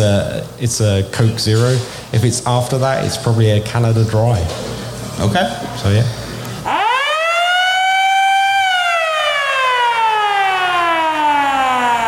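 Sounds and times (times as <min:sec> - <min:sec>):
speech: 0:00.0 - 0:06.8
air raid siren wailing: 0:06.7 - 0:12.0.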